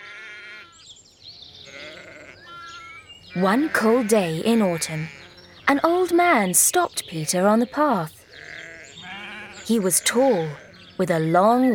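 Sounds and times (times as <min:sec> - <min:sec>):
small flock of sheep bleating: 0:00.0 - 0:00.8, 0:01.6 - 0:06.2, 0:07.3 - 0:10.9
speech: 0:03.3 - 0:08.2, 0:09.7 - 0:11.7.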